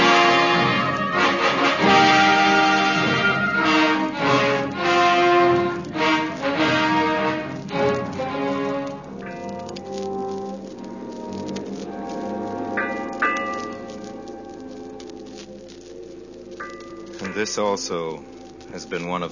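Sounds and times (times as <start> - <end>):
soft patter like rain: 0.0 - 19.3
ship's bell striking eight bells: 16.6 - 19.3
speech: 17.5 - 19.3.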